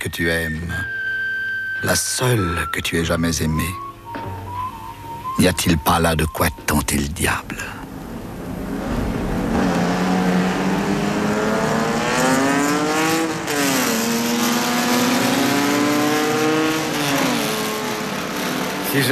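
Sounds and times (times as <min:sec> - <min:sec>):
speech: 0:00.0 - 0:01.0, 0:01.8 - 0:04.3, 0:05.4 - 0:07.8, 0:18.9 - 0:19.1
race car engine roaring on a track: 0:07.8 - 0:19.1.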